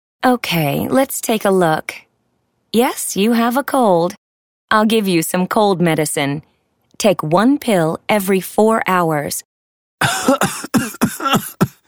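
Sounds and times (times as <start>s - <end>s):
speech: 0.2s - 2.1s, 2.7s - 11.7s
person with a cold and sore throat coughing: 10.0s - 11.8s.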